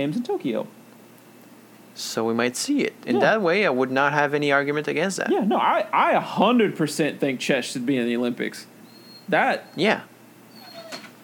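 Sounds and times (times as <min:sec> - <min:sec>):
speech: 0:00.0 - 0:00.8, 0:02.0 - 0:08.7, 0:09.3 - 0:10.1
quiet noise: 0:00.0 - 0:11.2
dog yelping: 0:08.9 - 0:09.8, 0:10.5 - 0:11.2.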